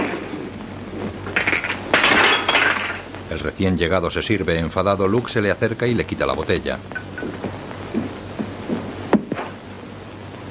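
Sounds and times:
low hum: 0.0 - 10.4
glasses knocked over on a bar in a Western saloon, clinking and clattering: 1.2 - 3.2
speech: 3.5 - 7.0.

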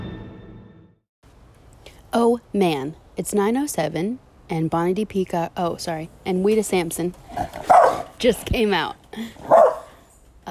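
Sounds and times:
speech: 2.1 - 9.7
dog barking: 7.6 - 8.1, 9.4 - 9.9.

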